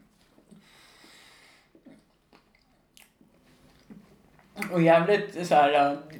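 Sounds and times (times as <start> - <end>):
wet chewing of a doughy pastry: 1.7 - 4.8
speech: 4.6 - 6.1.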